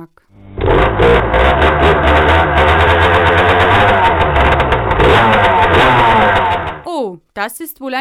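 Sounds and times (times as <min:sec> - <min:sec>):
speech: 0:00.0 - 0:00.3, 0:07.4 - 0:07.9
small moped engine revving: 0:00.4 - 0:06.9.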